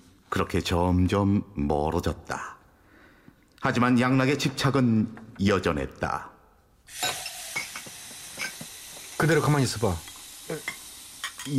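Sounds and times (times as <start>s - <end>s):
speech: 0.3s - 2.6s, 3.6s - 6.3s, 6.9s - 7.2s, 9.2s - 10.8s
running water pouring into a sink: 6.9s - 11.5s
dishes and pots clinking and clattering in a sink: 7.0s - 9.2s.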